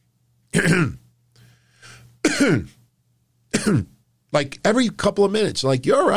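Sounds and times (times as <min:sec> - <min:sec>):
person imitating the harsh phlegmy smoker's cough of a former smoker: 0:00.5 - 0:01.1, 0:02.2 - 0:02.8, 0:03.5 - 0:04.0
speech: 0:00.6 - 0:01.0, 0:02.4 - 0:02.8, 0:03.7 - 0:06.1
soft wheezy breath: 0:01.3 - 0:02.2.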